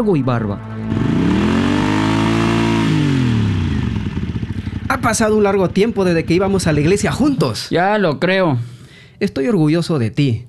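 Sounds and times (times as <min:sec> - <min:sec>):
speech: 0:00.0 - 0:01.2, 0:04.9 - 0:10.4
Harley motorcycle engine revving: 0:00.7 - 0:07.6.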